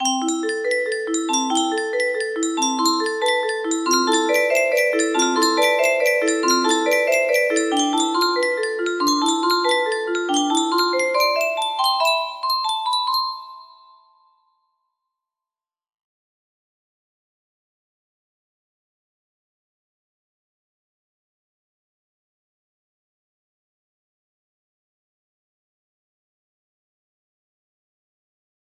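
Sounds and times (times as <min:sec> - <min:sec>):
music box melody rising and falling: 0:00.0 - 0:14.5.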